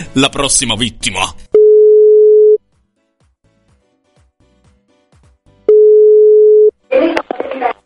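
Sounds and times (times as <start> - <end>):
speech: 0.2 - 1.5
ringback tone on a telephone line: 1.6 - 2.6, 5.7 - 6.7.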